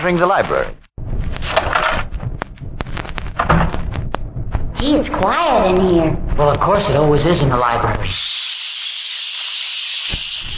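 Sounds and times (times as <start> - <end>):
speech: 0.0 - 0.8, 4.8 - 8.4
low rumbling thump: 1.0 - 7.4
escaping steam hissing: 8.0 - 10.5.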